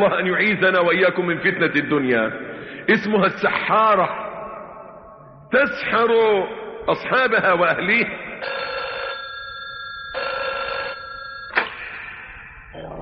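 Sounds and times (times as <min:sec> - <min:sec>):
speech: 0:00.0 - 0:04.2, 0:05.5 - 0:08.7
telephone ringing: 0:08.4 - 0:11.9.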